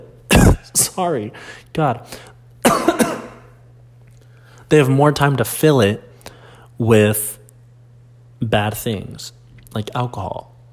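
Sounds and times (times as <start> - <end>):
person coughing harshly: 0.3 - 1.0, 2.6 - 3.6
speech: 0.6 - 2.3, 4.7 - 6.1, 6.8 - 7.4, 8.4 - 10.5.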